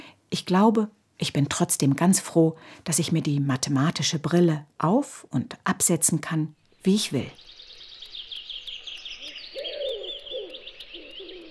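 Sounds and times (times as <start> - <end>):
speech: 0.4 - 7.5
chorus of birds chirping and trilling in a forest: 6.6 - 11.4
birds cooing: 7.4 - 11.4.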